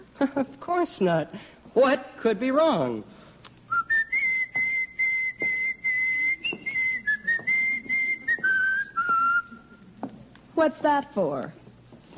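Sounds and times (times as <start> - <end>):
speech: 0.3 - 3.2, 10.6 - 11.6
person whistling a marching tune: 3.7 - 9.7.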